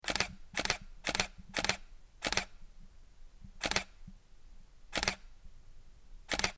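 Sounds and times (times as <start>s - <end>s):
Canon EOS Rebel T3 1100D camera shutter burst: 0.1s - 2.6s, 3.6s - 4.0s, 4.9s - 5.3s, 6.3s - 6.5s.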